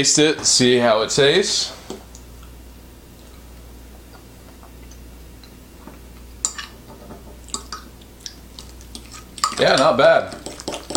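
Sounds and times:
speech: 0.0s - 2.0s, 9.6s - 10.4s
avocado dip with hot sauce being mashed and mixed in a bowl: 7.6s - 10.9s.

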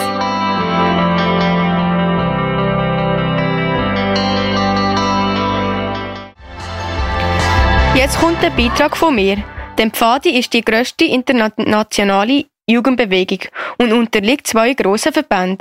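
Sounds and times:
recorded song with effects-laden electric guitar: 0.0s - 10.2s
speech: 8.0s - 15.5s.

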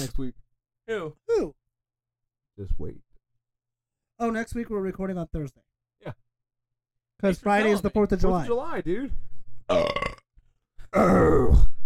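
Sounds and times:
speech: 0.0s - 1.6s, 2.6s - 3.1s, 4.2s - 6.2s, 7.2s - 10.2s, 10.9s - 11.8s
person burping: 9.7s - 10.3s, 10.9s - 11.7s.

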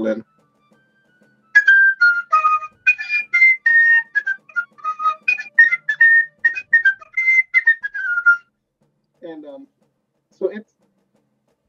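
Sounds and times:
speech: 0.0s - 0.3s
shrill fife playing a brisk tune: 0.0s - 8.5s.

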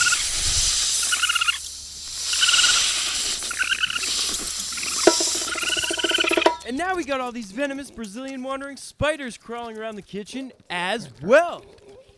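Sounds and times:
snakes hissing inside a house: 0.0s - 6.6s
short chattering bursts: 3.5s - 6.6s
speech: 6.8s - 11.8s.

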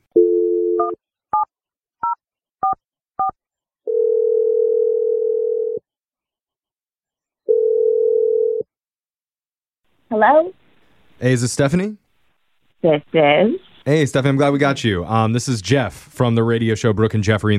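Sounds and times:
telephone ringing tone while placing a call: 0.2s - 1.0s, 3.9s - 5.8s, 7.5s - 8.7s
speech: 10.1s - 10.6s, 11.2s - 12.0s, 12.8s - 17.5s.

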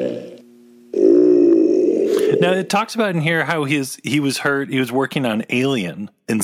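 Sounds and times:
person performing deep guttural creature burp: 0.0s - 2.6s
speech: 2.4s - 6.4s.

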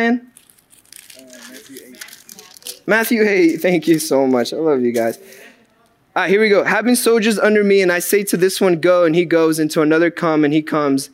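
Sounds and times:
speech: 0.0s - 0.3s, 2.9s - 5.4s, 6.2s - 11.1s
crisp paper rustling and crinkling as pages are searched by hand: 0.4s - 4.2s.

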